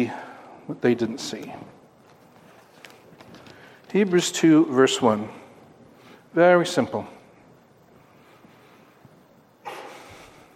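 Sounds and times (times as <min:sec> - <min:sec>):
speech: 0:00.0 - 0:01.8, 0:03.9 - 0:05.4, 0:06.3 - 0:07.2
hissy noise: 0:00.0 - 0:10.5
person sneezing: 0:09.6 - 0:10.3.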